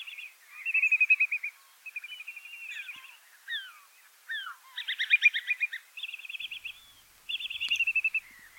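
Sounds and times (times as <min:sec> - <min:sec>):
whimbrel piping calls: 0:00.0 - 0:08.5
whimbrel soft downslurred notes: 0:06.4 - 0:08.5.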